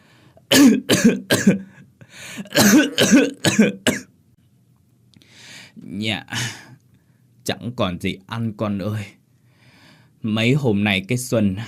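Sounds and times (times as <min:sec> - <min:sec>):
old woman coughing heavily in a kitchen: 0:00.5 - 0:01.7, 0:02.4 - 0:04.1
speech: 0:00.7 - 0:04.0, 0:05.8 - 0:06.7, 0:07.5 - 0:09.2, 0:10.2 - 0:11.6.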